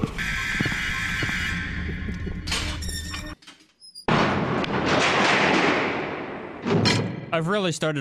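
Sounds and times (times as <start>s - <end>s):
heavy bunker doors creaking and grinding: 0.0s - 5.6s
speech: 7.3s - 7.9s.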